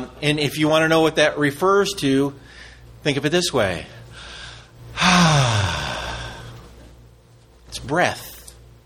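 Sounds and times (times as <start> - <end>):
speech: 0.2 - 4.0, 5.0 - 5.6, 7.9 - 8.3
breathy gasp: 4.1 - 6.5
voice imitating breath with a breathy exhale: 5.0 - 6.5.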